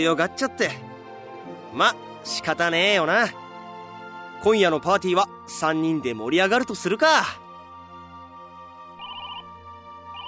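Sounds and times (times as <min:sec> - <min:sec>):
speech: 0:00.0 - 0:00.9, 0:01.7 - 0:03.4, 0:04.4 - 0:07.4
incoming phone call ringtone with rapid trilling electronic tones: 0:09.0 - 0:10.2.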